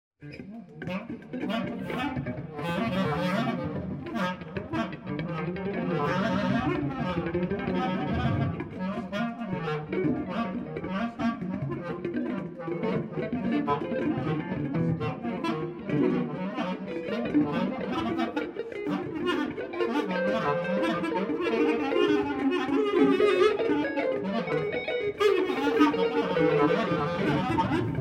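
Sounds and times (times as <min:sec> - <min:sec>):
clarinet: 0:00.2 - 0:27.9
guitar: 0:00.2 - 0:27.9.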